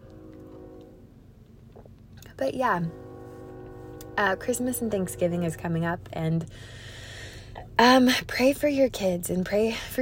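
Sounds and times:
faint droning horn-like tone: 0:00.0 - 0:01.3, 0:02.3 - 0:07.6
train passing with a steady low rumble: 0:00.0 - 0:10.0
speech: 0:02.4 - 0:03.0, 0:04.2 - 0:06.9, 0:07.8 - 0:10.0.

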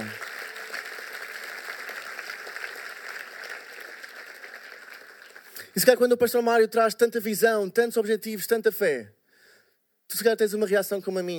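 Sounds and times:
audience applause in a large room: 0:00.0 - 0:05.8
speech: 0:05.8 - 0:09.2, 0:10.1 - 0:11.3.

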